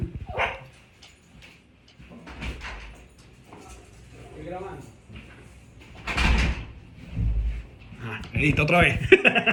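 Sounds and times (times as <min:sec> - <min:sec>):
dog barking as its owner arrives: 0:00.3 - 0:00.7
door opening: 0:02.1 - 0:04.0, 0:05.8 - 0:07.6
speech: 0:04.5 - 0:05.0, 0:08.4 - 0:09.5
laughter: 0:08.9 - 0:09.5.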